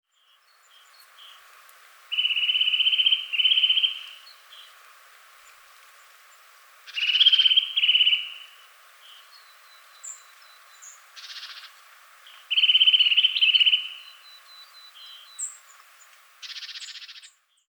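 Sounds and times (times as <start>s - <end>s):
Eurasian nuthatch Sitta europaea calling in rapid trilled notes: 2.1s - 4.2s, 6.9s - 8.6s, 11.2s - 15.5s.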